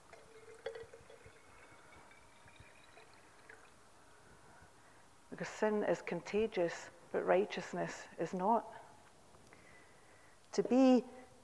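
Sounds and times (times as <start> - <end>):
water pouring into a glass: 0.0 - 4.1
light glass clink: 0.2 - 3.6
speech: 5.4 - 8.8, 10.6 - 11.2.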